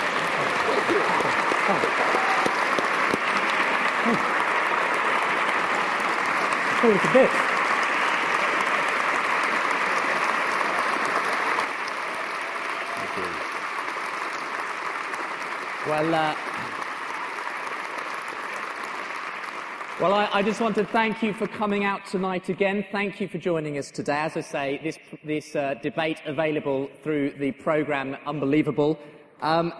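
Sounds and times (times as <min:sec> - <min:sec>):
crowd applauding: 0:00.0 - 0:22.5
speech: 0:04.1 - 0:04.3, 0:06.8 - 0:07.4, 0:15.9 - 0:16.5, 0:20.0 - 0:29.7.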